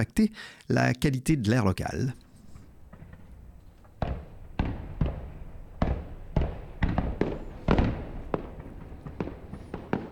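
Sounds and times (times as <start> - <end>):
speech: 0.0 - 2.2
fireworks bursting across a river: 2.4 - 10.1.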